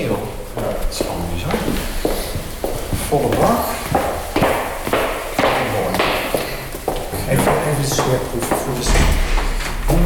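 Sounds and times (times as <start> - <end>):
steady hiss: 0.0 - 10.0
door swung shut to keep the warmth in: 8.8 - 10.0.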